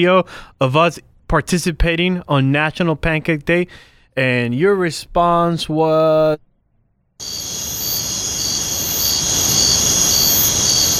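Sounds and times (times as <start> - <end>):
speech: 0.0 - 6.5, 7.2 - 7.6
chorus of crickets chirping: 7.2 - 10.9.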